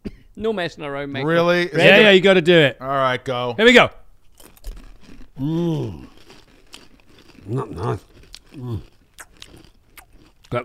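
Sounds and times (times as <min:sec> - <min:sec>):
speech: 0:00.4 - 0:04.0, 0:05.4 - 0:06.1, 0:07.4 - 0:08.9
person chewing a crunchy snack: 0:04.2 - 0:10.6
drawn-out hummed vocal sound with rising and falling pitch: 0:05.4 - 0:06.0.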